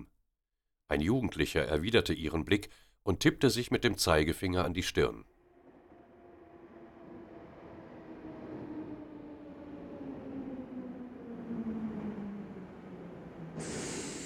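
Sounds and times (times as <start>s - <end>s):
speech: 0.9s - 5.3s
subway train rumbling into a station: 5.4s - 14.2s
subway train air brakes hissing: 13.4s - 14.2s.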